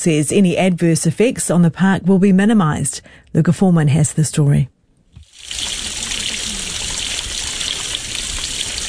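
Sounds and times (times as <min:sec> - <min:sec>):
speech: 0:00.0 - 0:04.8
water pouring out of a pipe into a stream: 0:05.2 - 0:08.8.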